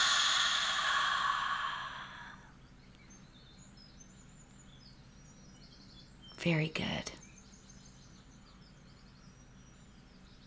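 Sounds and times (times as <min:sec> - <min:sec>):
slow deep exhale after a held breath during a relaxation exercise: 0:00.0 - 0:02.6
speech: 0:06.4 - 0:07.2.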